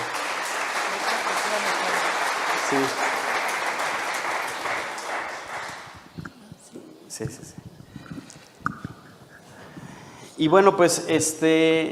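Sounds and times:
applause from a group: 0:00.0 - 0:06.2
speech: 0:02.7 - 0:03.0, 0:07.2 - 0:07.5, 0:10.4 - 0:11.8.

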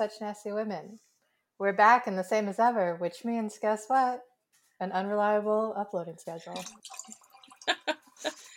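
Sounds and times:
speech: 0:00.0 - 0:08.4
vodka splashing into a glass: 0:06.5 - 0:08.5.

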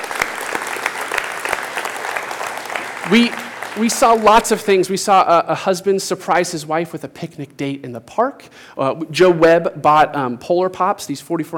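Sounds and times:
audience clapping: 0:00.0 - 0:04.8
speech: 0:03.1 - 0:11.5.

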